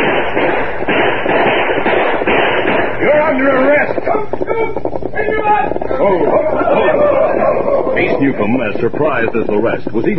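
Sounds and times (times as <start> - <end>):
gunfire from a sheriff's posse shooting at outlaws: 0.0 - 8.1
laughter: 5.8 - 8.9
speech: 8.2 - 10.1.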